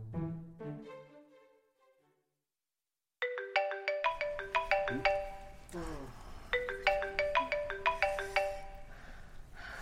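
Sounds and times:
mobile phone melodic ringtone: 0:03.3 - 0:05.6, 0:06.5 - 0:08.9.

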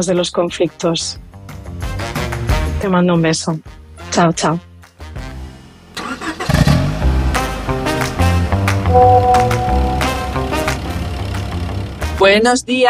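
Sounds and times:
speech: 0:00.0 - 0:01.6, 0:02.8 - 0:04.7, 0:12.3 - 0:12.8
car engine rumbling while driving along a highway: 0:05.8 - 0:12.2.

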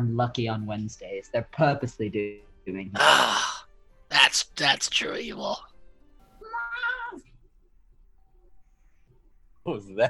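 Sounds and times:
speech: 0:00.0 - 0:05.7, 0:09.6 - 0:10.0
person yawning like a cat's meow: 0:03.0 - 0:03.6.

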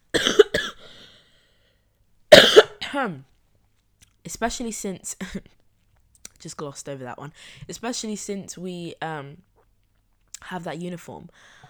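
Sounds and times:
person coughing: 0:00.1 - 0:01.1, 0:02.3 - 0:03.1
speech: 0:02.9 - 0:03.3, 0:04.3 - 0:05.6, 0:06.4 - 0:09.5, 0:10.4 - 0:11.6.

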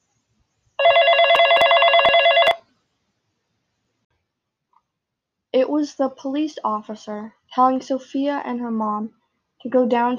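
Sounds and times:
phone ringing in a warbling trill: 0:00.8 - 0:02.6
speech: 0:05.5 - 0:10.1.

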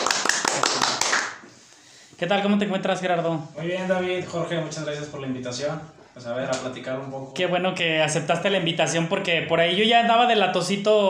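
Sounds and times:
hand clapping for a guest being introduced: 0:00.0 - 0:01.5
speech: 0:02.2 - 0:11.0.

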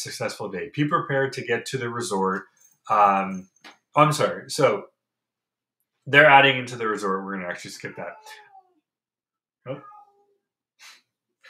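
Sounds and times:
speech: 0:00.0 - 0:04.9, 0:06.1 - 0:08.4, 0:09.6 - 0:09.9
cat meowing: 0:07.8 - 0:08.8, 0:09.7 - 0:10.4.

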